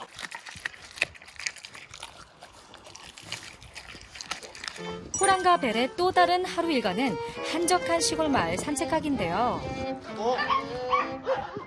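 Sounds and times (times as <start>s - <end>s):
dog with wolf blood crunching raw chicken with bones: 0.0s - 5.6s
speech: 4.8s - 11.6s.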